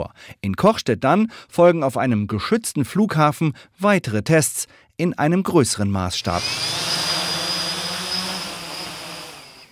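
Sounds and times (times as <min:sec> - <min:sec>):
speech: 0:00.0 - 0:07.2
small drone whirring in a test cage: 0:06.4 - 0:09.6.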